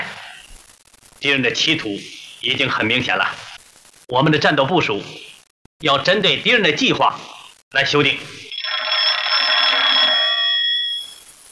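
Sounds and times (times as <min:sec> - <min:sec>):
speech: 0:01.2 - 0:03.5, 0:04.1 - 0:08.5
metallic telephone bell ringing: 0:08.5 - 0:11.3.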